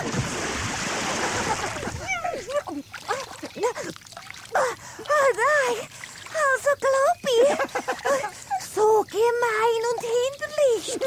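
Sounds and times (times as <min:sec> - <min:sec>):
loud churning splash of a rhinoceros pushed into water: 0:00.0 - 0:02.2
laughter: 0:01.1 - 0:03.9, 0:07.2 - 0:08.6
voices: 0:01.4 - 0:03.9, 0:04.6 - 0:11.0.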